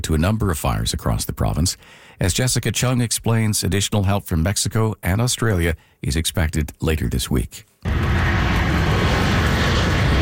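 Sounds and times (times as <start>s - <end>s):
speech: 0.0s - 8.1s
aircraft engine roar from a plane carrying wildfire crews touching down: 7.9s - 10.2s.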